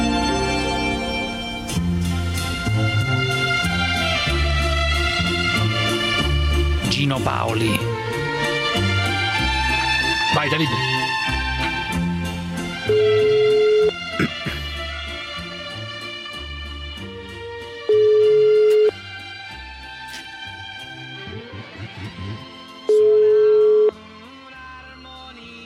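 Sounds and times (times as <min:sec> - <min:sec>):
lively instrumental music: 0:00.0 - 0:25.6
speech: 0:07.0 - 0:07.9, 0:10.4 - 0:10.9
telephone ringing: 0:12.9 - 0:14.0, 0:17.9 - 0:18.9, 0:22.9 - 0:24.0.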